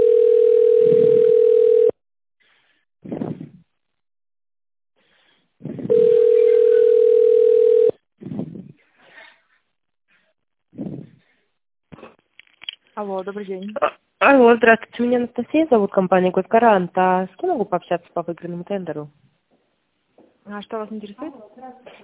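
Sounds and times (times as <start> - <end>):
telephone ringback tone: 0.0 - 2.0, 5.9 - 8.0
speech: 13.0 - 19.2, 20.5 - 22.0.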